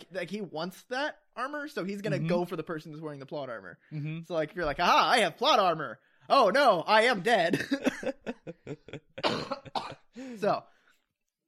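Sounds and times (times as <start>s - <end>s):
speech: 0.1s - 10.8s
person coughing: 7.5s - 8.2s, 9.2s - 10.1s.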